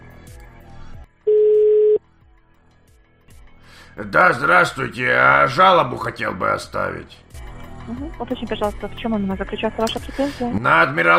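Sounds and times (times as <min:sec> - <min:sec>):
telephone line tone while calling a number back: 0:01.3 - 0:02.0
speech: 0:04.0 - 0:07.2, 0:07.9 - 0:11.1.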